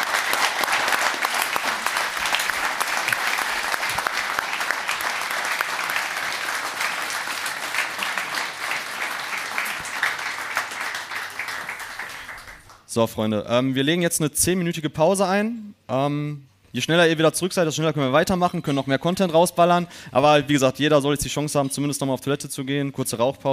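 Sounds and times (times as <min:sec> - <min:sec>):
live audience applauding: 0:00.0 - 0:12.8
speech: 0:13.0 - 0:23.5.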